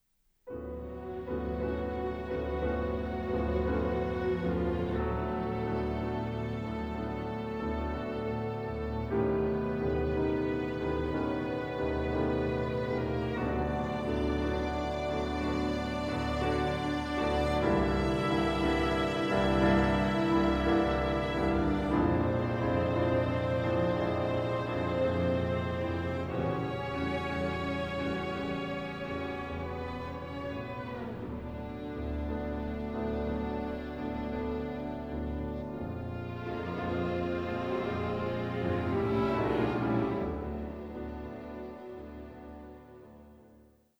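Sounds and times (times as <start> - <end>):
piano quintet playing: 0.5 - 43.9.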